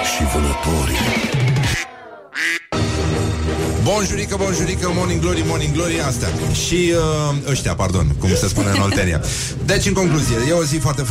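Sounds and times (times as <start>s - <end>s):
speech: 0.2s - 1.4s, 4.0s - 11.0s
ducks quacking: 1.6s - 2.7s
laughter: 8.2s - 9.3s.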